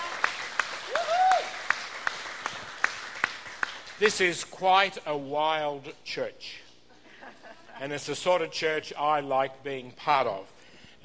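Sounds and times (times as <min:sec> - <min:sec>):
church audience applauding: 0:00.0 - 0:04.2
person cheering: 0:00.9 - 0:01.6
speech: 0:04.0 - 0:06.6, 0:07.8 - 0:11.0.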